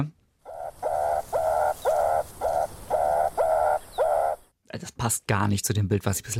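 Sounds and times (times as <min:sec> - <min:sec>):
meerkat giving short nasal calls: 0:00.5 - 0:04.4
speech: 0:04.8 - 0:06.3.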